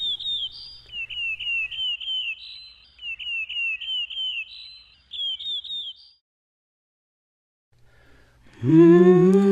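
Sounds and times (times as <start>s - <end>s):
bird singing whistling chirps: 0.0s - 6.2s
speech: 8.6s - 9.4s.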